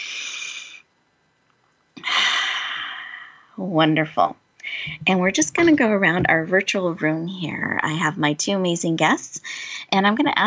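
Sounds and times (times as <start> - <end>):
group taking a deep breath together in a guided breathing exercise: 2.0 - 3.5
speech: 3.6 - 10.4.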